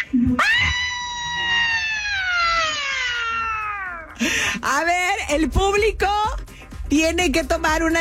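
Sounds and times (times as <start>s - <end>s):
loud shrill human scream: 0.3s - 4.2s
speech: 5.3s - 8.0s.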